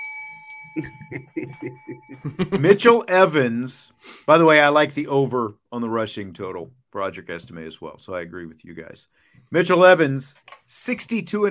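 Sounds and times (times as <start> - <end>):
bright metallic bell ding: 0.0 - 2.3
laughter: 0.8 - 3.0
speech: 0.8 - 11.4.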